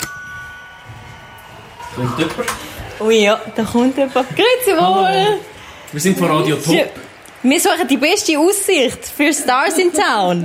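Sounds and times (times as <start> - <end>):
doorbell ringing at an apartment: 0.0 - 2.8
speech: 2.0 - 10.4.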